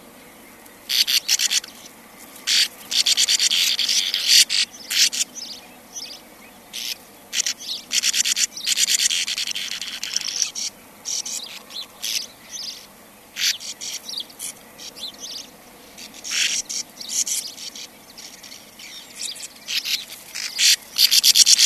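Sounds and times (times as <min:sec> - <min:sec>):
sand martin uttering rough buzzy twittering calls: 0:00.0 - 0:21.6.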